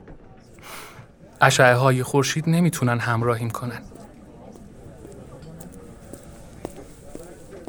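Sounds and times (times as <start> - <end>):
steady murmur of crowd chatter: 0.0 - 7.6
speech: 1.4 - 3.9
high-heeled shoes clicking on a hard stone floor: 3.9 - 7.6.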